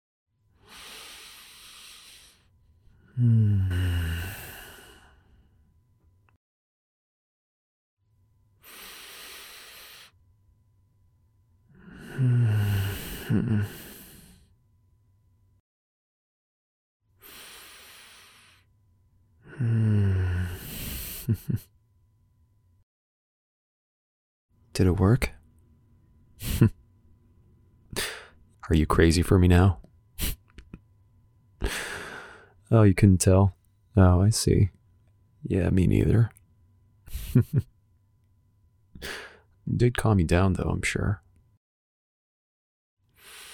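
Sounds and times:
two people breathing deeply in unison: 0:00.6 - 0:05.7, 0:08.6 - 0:10.2, 0:11.7 - 0:14.6, 0:17.2 - 0:18.7, 0:19.4 - 0:21.6, 0:28.0 - 0:28.4, 0:31.6 - 0:32.6, 0:37.1 - 0:37.6, 0:39.0 - 0:39.5, 0:43.1 - 0:43.5
speech: 0:03.2 - 0:03.8, 0:24.8 - 0:25.4, 0:26.4 - 0:26.8, 0:28.7 - 0:30.4, 0:32.7 - 0:34.8, 0:35.4 - 0:36.4, 0:37.3 - 0:37.7, 0:39.0 - 0:41.2.

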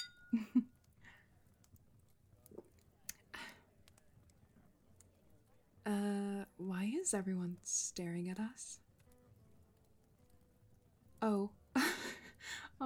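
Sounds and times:
glasses clinking in a toast: 0:00.0 - 0:00.4
speech: 0:05.9 - 0:08.8, 0:11.2 - 0:11.6, 0:12.4 - 0:12.8.

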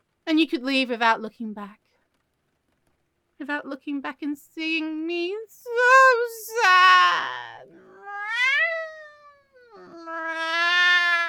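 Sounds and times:
speech: 0:00.4 - 0:01.8, 0:03.4 - 0:07.9
cat meowing: 0:06.5 - 0:11.2.

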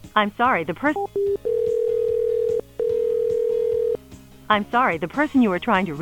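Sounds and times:
speech: 0:00.2 - 0:01.4, 0:04.5 - 0:06.0
ringback tone on an outgoing phone call: 0:01.2 - 0:04.0.

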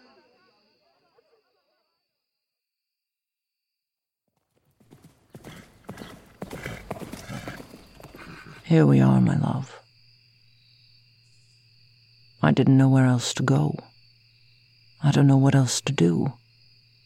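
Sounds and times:
horse hooves clip-clopping: 0:04.4 - 0:08.6
speech: 0:08.7 - 0:09.8, 0:12.4 - 0:13.9, 0:15.0 - 0:16.4.

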